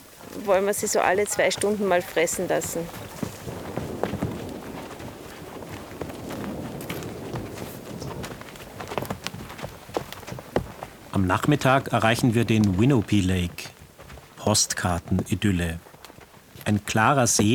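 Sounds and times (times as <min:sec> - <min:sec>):
hooves of horses walking on a horseback trek: 0:00.0 - 0:17.5
speech: 0:00.4 - 0:03.2, 0:11.2 - 0:13.7, 0:14.4 - 0:15.9, 0:16.7 - 0:17.5
soft rush of wind outdoors: 0:00.5 - 0:13.2.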